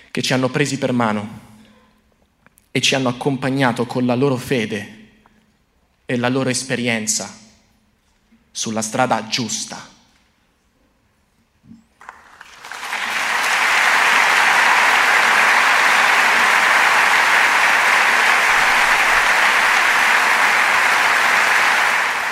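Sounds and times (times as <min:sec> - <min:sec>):
speech: 0:00.2 - 0:01.5, 0:02.8 - 0:05.0, 0:06.1 - 0:07.4, 0:08.6 - 0:10.0
large theatre audience applauding: 0:12.0 - 0:22.2.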